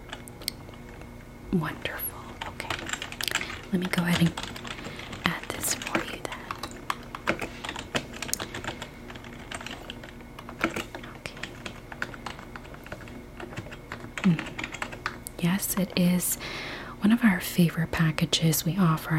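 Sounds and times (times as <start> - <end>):
speech: 1.5 - 2.1, 3.7 - 4.6, 5.3 - 6.0, 15.7 - 19.1
soft typing on a computer keyboard at a resort check-in: 2.1 - 15.2.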